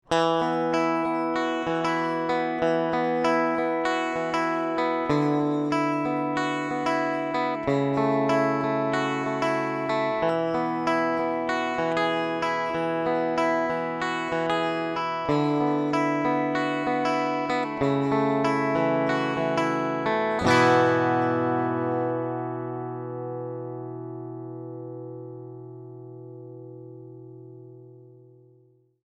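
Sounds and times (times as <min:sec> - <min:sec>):
Fender Super Sonic and Vibratone guitar amplifier: 0:00.0 - 0:28.8.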